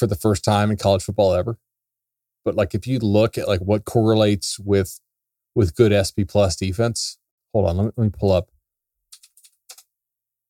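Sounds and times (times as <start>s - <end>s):
speech: 0.0s - 1.7s, 2.4s - 5.0s, 5.6s - 8.5s
typing on a computer keyboard: 9.1s - 9.9s.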